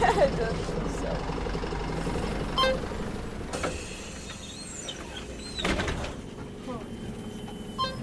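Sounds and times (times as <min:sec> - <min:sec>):
city bus engine idling in Tbilisi Georgia: 0:00.0 - 0:08.0
hiss and clunk: 0:03.5 - 0:06.2.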